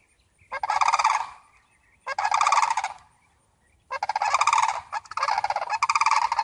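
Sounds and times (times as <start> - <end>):
flock of turkeys gobbling: 0.5 - 1.5, 2.1 - 3.1, 3.9 - 6.4.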